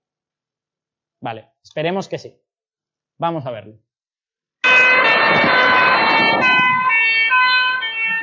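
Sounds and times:
speech: 1.2 - 2.4, 3.2 - 3.9
fire truck siren wailing: 4.6 - 8.2.

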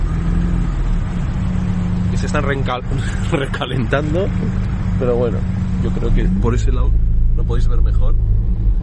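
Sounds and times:
XR2 car engine with a weak battery starting and revving: 0.0 - 8.8
speech: 2.3 - 8.4
laughter: 3.0 - 3.8.

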